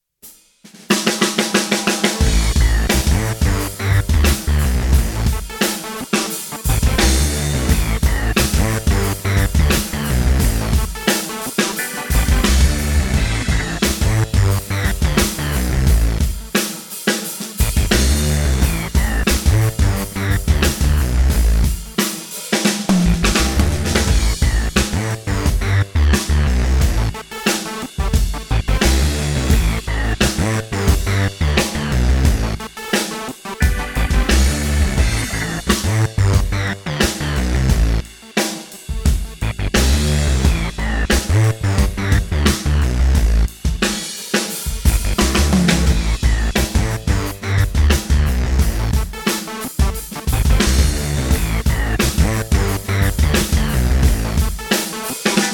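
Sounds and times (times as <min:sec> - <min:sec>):
drums playing: 0:00.2 - 0:55.5.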